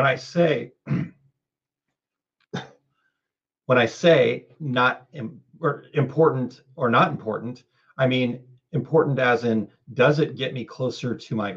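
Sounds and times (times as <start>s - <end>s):
speech: 0.0s - 1.2s, 3.7s - 11.5s
man clearing his throat: 0.8s - 1.2s
man coughing: 0.9s - 1.1s.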